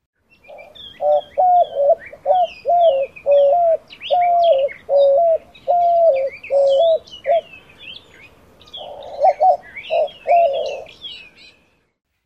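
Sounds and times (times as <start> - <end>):
smaller birds chirping faintly: 0.2 - 12.0
white-winged dove singing hooting coos: 0.4 - 7.6, 8.7 - 11.0.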